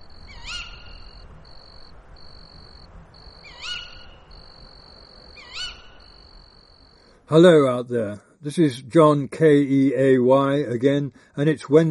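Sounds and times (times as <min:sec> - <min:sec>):
thin high cricket-like trill in undergrowth at night: 0:00.0 - 0:07.2
louder rising-and-falling calls: 0:00.3 - 0:01.2, 0:03.4 - 0:04.4, 0:05.4 - 0:06.2
speech: 0:07.3 - 0:11.8.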